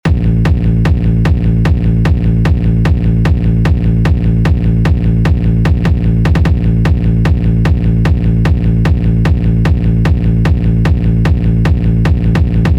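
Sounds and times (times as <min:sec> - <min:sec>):
hard techno kick drum: 0:00.0 - 0:12.7.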